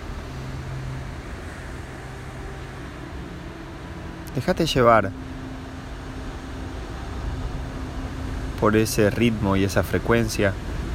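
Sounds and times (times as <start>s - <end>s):
ocean surf rumbling: 0.0s - 10.9s
speech: 4.4s - 5.3s, 8.6s - 10.7s.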